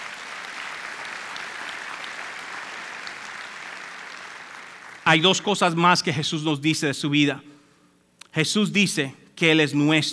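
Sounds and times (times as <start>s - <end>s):
large crowd applauding: 0.0s - 5.5s
speech: 5.1s - 7.5s, 8.4s - 10.1s.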